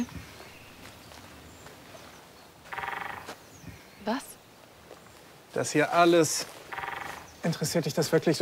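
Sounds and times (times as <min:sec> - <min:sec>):
woodpecker drumming in a tree: 0:02.6 - 0:03.3, 0:06.6 - 0:07.7
speech: 0:04.0 - 0:04.3, 0:05.6 - 0:06.6, 0:07.4 - 0:08.4.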